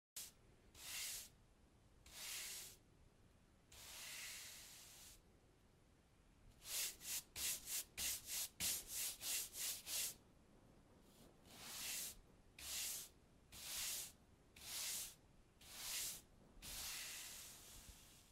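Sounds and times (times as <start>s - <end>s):
broom sweeping a house floor: 0.2s - 1.4s, 2.0s - 2.8s, 3.7s - 5.2s, 6.6s - 10.2s, 11.1s - 18.3s.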